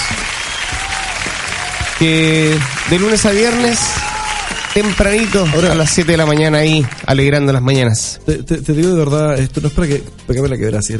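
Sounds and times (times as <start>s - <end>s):
audience applause: 0.0s - 7.6s
speech: 2.0s - 4.1s, 4.8s - 10.9s.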